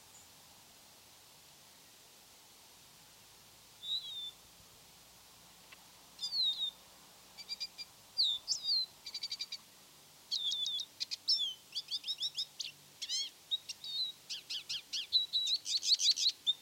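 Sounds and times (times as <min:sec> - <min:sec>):
lesser goldfinch singing: 0:03.8 - 0:04.4, 0:06.2 - 0:06.8, 0:07.4 - 0:09.7, 0:10.3 - 0:16.6.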